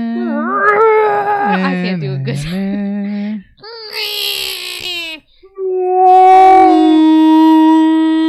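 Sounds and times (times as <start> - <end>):
person's voice imitating a dinosaur roar: 0.2 - 1.9, 5.5 - 8.2.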